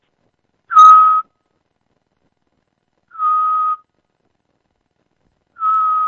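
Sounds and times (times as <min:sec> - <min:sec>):
person whistling imitation of Eurasian scops owl call: 0:00.7 - 0:01.3, 0:03.2 - 0:03.8, 0:05.6 - 0:06.0.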